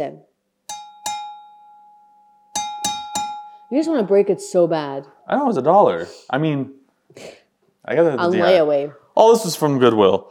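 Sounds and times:
speech: 0.0 - 0.3, 3.7 - 10.3
glass object clinking: 0.7 - 4.6.

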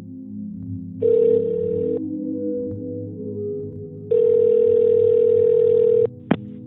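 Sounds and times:
phone ringback tone: 1.0 - 2.0, 4.1 - 6.1.

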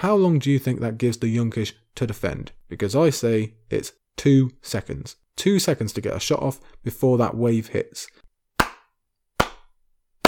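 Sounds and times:
speech: 0.0 - 8.2
slow hand claps: 8.6 - 10.2.

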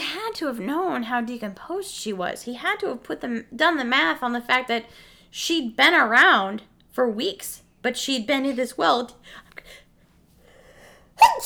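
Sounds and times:
speech: 0.3 - 9.8, 11.2 - 11.4
soft inhale: 4.9 - 5.3, 9.2 - 11.4
person sneezing: 11.2 - 11.4.

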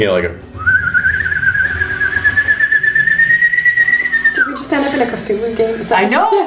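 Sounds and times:
speech: 0.0 - 0.5, 4.7 - 6.4
woman blowing ululating whistle through cupped hands: 0.6 - 4.8.

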